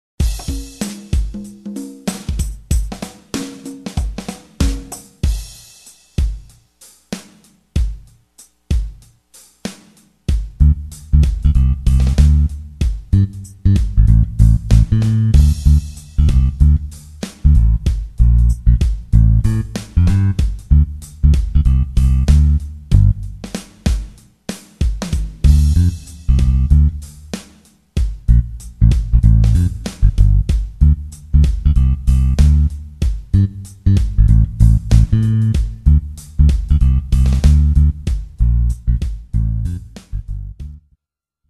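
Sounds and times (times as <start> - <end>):
smooth jazz drums: 0.2 - 40.8
smooth jazz bass: 10.5 - 24.2, 25.3 - 27.4, 28.1 - 41.0.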